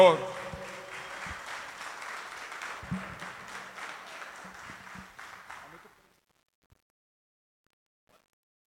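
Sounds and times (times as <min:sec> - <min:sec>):
speech: 0:00.0 - 0:00.3
audience applauding: 0:00.0 - 0:06.1.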